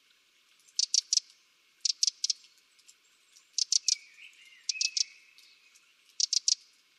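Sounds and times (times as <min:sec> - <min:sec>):
faint soft chirps: 0:00.6 - 0:06.7
Eurasian wren Troglodytes troglodytes ticking calls: 0:00.7 - 0:02.5, 0:03.4 - 0:06.7.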